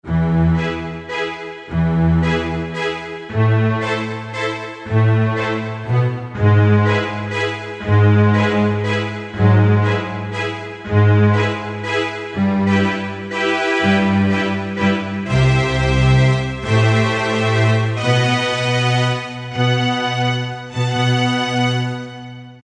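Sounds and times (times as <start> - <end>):
string orchestra patch on a synthesizer: 0.0 - 22.6.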